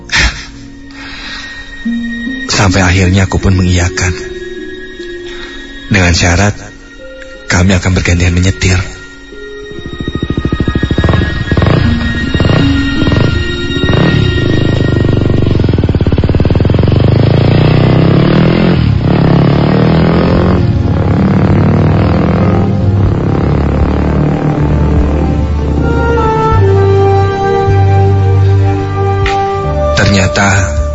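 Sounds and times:
speech: 1.8 - 4.3, 5.9 - 6.6, 7.6 - 9.0
motorcycle engine revving while riding: 8.2 - 30.9.

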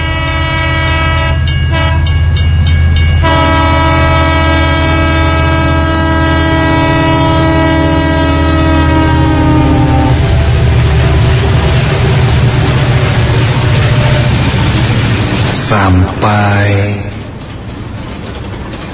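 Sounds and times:
train horn blaring: 0.0 - 2.2, 3.2 - 11.5
long train with several carriages rumbling past: 0.0 - 18.9.

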